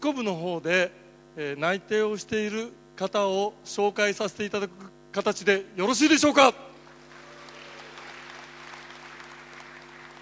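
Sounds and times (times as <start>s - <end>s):
speech: 0.0s - 6.7s
faint constant hum: 0.0s - 10.2s
audience applause at a meeting: 6.8s - 10.2s.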